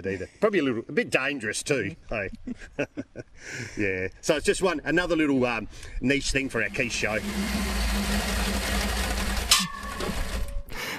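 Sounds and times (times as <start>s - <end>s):
speech: 0.0s - 9.0s
V8-powered chainsaw running with a rumbling engine drone: 6.5s - 10.9s
sharp burst of noise: 6.6s - 10.7s.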